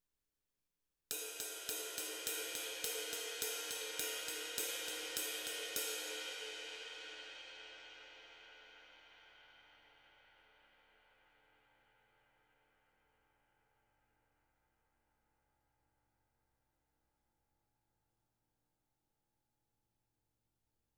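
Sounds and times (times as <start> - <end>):
rock ride cymbal: 1.1 - 7.8.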